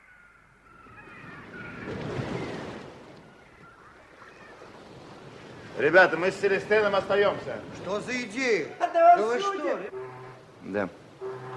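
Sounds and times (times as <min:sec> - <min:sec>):
wind over a stormy sea: 0:00.0 - 0:11.5
steady roar of churning sea water: 0:01.0 - 0:11.5
wave surging and crashing on a rough sea: 0:01.0 - 0:11.5
speech: 0:05.8 - 0:10.0, 0:10.6 - 0:11.0.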